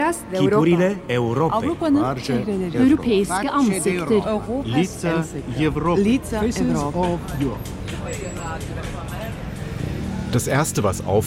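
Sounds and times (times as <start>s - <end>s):
speech: 0.1s - 9.0s, 10.3s - 11.2s
dense roar of city street traffic engines: 4.4s - 11.2s.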